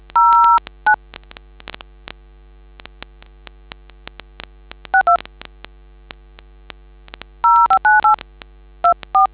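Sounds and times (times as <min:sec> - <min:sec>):
DTMF telephone keypad tones: 0:00.2 - 0:00.6, 0:05.0 - 0:05.2, 0:07.4 - 0:08.2, 0:08.8 - 0:09.3.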